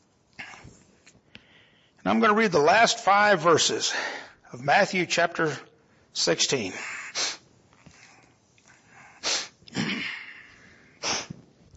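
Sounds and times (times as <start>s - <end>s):
speech: 2.1s - 7.0s
person sneezing: 9.2s - 11.4s.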